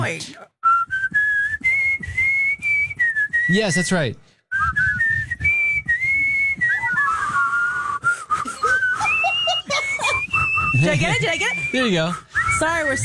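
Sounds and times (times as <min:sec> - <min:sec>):
speech: 0:00.0 - 0:00.6, 0:03.5 - 0:04.8, 0:10.8 - 0:13.0
person whistling a song melody: 0:00.6 - 0:03.7, 0:04.5 - 0:13.0
laughter: 0:08.2 - 0:12.0.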